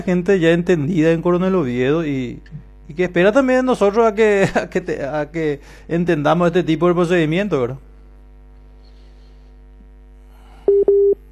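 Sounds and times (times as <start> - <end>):
speech: 0.0 - 7.9
low constant hum: 0.0 - 11.3
telephone tone bursts as a call comes through to a doctor: 10.7 - 11.3.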